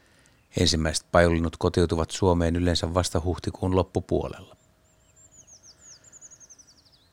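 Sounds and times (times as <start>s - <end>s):
low hiss: 0.0s - 7.1s
speech: 0.5s - 4.6s
Eurasian treecreeper singing: 4.4s - 7.1s.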